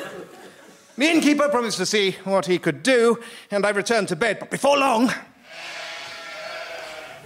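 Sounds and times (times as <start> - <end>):
laughter: 0.0 - 1.0
speech: 1.0 - 5.7
several sheep bleating in chorus: 5.4 - 7.2.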